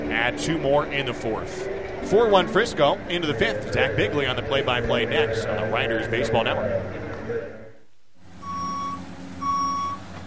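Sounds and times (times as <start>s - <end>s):
speech: 0.2s - 7.0s
construction equipment reversing beeps: 8.4s - 10.1s.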